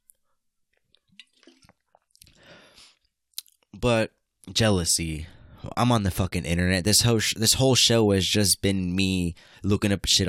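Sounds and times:
person sipping water with slurps clicks and a gurgle: 0:01.0 - 0:02.4
speech: 0:03.8 - 0:10.2.

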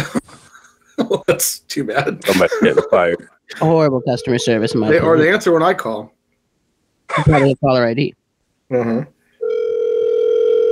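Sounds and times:
laughter: 0:00.0 - 0:03.4
speech: 0:01.0 - 0:06.2, 0:07.1 - 0:09.1
telephone dial tone: 0:09.4 - 0:10.7.

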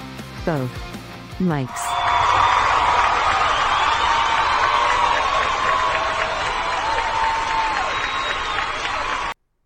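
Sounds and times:
speech: 0:00.4 - 0:02.0
large studio audience cheering and clapping: 0:01.7 - 0:09.4.

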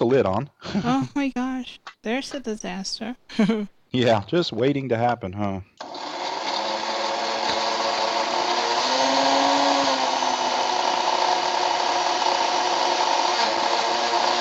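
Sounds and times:
speech: 0:00.0 - 0:06.1
blender blending jalapeno into sour cream: 0:05.8 - 0:14.3.

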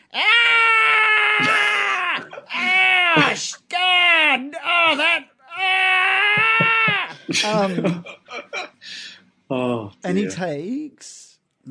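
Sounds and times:
performer voicing a character's pained scream: 0:00.0 - 0:07.2
speech: 0:00.1 - 0:00.4, 0:07.4 - 0:08.2, 0:09.5 - 0:11.7
laughter: 0:01.4 - 0:03.5, 0:06.2 - 0:08.8.

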